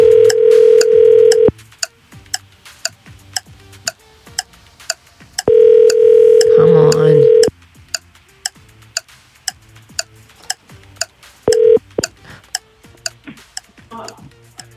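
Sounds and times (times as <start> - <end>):
outgoing phone call ringback tone: 0.0 - 1.5, 5.4 - 7.5, 11.5 - 11.8
brisk clock-like ticking: 0.0 - 14.7
faint voices: 6.5 - 7.5.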